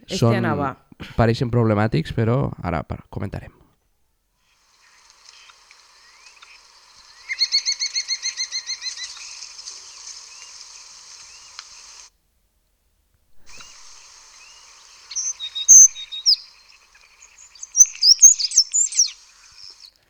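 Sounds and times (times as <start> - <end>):
speech: 0.1 - 3.6
common starling singing and mimicking other birds: 6.4 - 9.4, 13.5 - 20.0.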